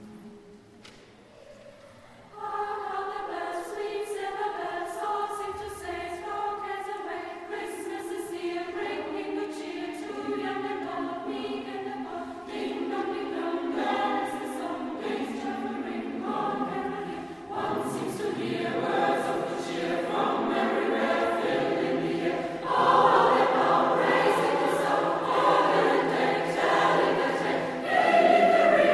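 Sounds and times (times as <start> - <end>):
choir and jubilee choir singing: 2.0 - 28.9.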